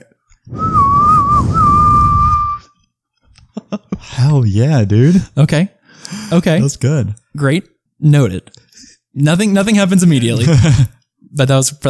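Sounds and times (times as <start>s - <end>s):
person whistling to call a pet: 0.5s - 2.8s
speech: 4.2s - 8.6s, 9.2s - 11.8s.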